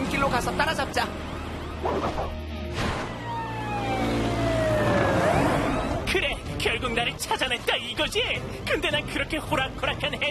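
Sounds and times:
fire truck siren wailing: 0.0 - 6.1
speech: 0.2 - 2.9, 6.2 - 10.2.

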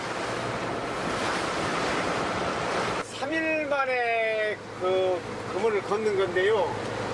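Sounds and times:
wind on open water: 0.0 - 7.1
winter sea waves on open water: 0.0 - 7.1
speech: 3.8 - 6.9.

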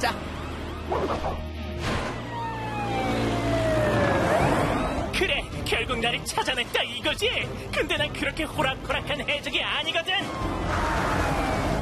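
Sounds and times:
speech: 0.0 - 0.3, 0.9 - 1.5, 5.9 - 11.2
fire truck siren wailing: 0.0 - 6.2, 10.2 - 11.7.

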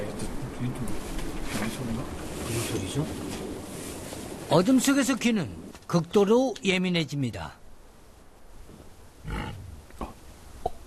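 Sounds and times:
speech: 0.6 - 3.4, 4.5 - 7.6
wild boar grunting and snorting: 9.2 - 10.2.

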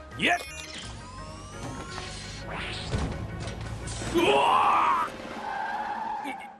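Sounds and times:
speech: 0.2 - 0.8, 4.1 - 4.9
classic car tires screeching in a skid: 4.9 - 6.5.

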